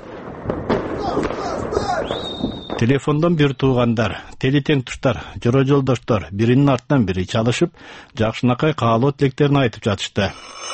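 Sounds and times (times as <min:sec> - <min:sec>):
colourful Chinese fireworks bursting over Bishkek at night: 0:00.0 - 0:03.0
speech: 0:02.0 - 0:10.7.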